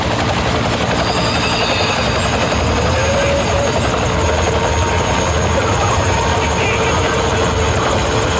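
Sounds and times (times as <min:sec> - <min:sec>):
helicopters flying overhead with thudding rotors: 0:00.0 - 0:08.3
faint indistinct voices: 0:02.8 - 0:08.3.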